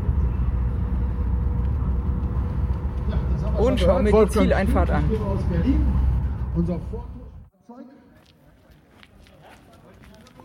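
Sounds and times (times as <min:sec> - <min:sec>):
car engine rumble in a race: 0:00.0 - 0:07.5
speech: 0:03.6 - 0:07.2.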